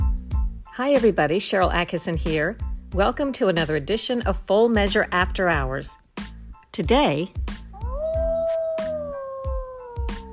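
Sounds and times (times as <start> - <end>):
speech: 0.8 - 6.1, 6.8 - 7.6
wild wolf howling: 7.8 - 10.3.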